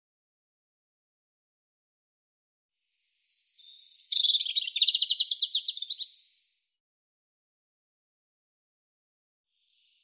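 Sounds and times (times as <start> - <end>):
European robin song: 3.2 - 6.7.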